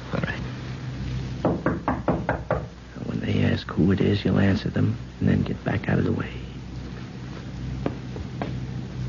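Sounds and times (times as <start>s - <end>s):
low hum: 0.0s - 9.0s
firm knocking on a door: 1.4s - 2.7s
speech: 3.7s - 6.4s.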